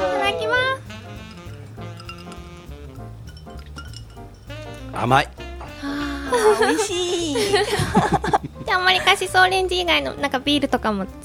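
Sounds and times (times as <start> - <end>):
glasses clinking together in a toast: 1.2 - 4.9
speech: 5.0 - 5.4, 6.4 - 11.2
laughter: 5.9 - 9.2.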